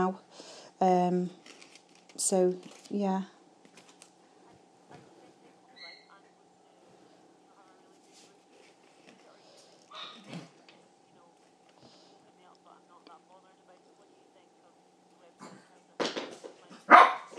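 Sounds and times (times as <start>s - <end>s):
speech: 0.0s - 1.5s, 2.2s - 3.4s
faint steady hum: 0.0s - 17.3s
dog barking: 16.8s - 17.3s.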